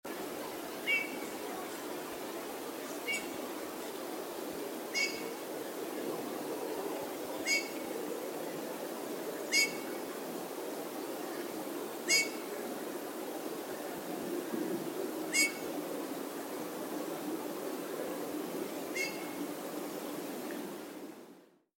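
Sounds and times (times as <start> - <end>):
steady background hiss: 0.1 - 21.6
Eurasian bullfinch Pyrrhula pyrrhula calling: 0.8 - 1.3, 3.0 - 3.3, 4.9 - 5.4, 7.4 - 7.8, 9.5 - 9.8, 12.1 - 12.4, 15.3 - 15.6, 18.9 - 19.4.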